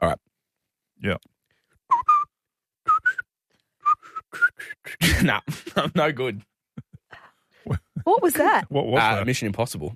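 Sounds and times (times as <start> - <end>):
speech: 1.0 - 1.3, 5.0 - 6.5, 7.7 - 9.9
person whistling a tune: 1.9 - 2.3, 2.9 - 4.9.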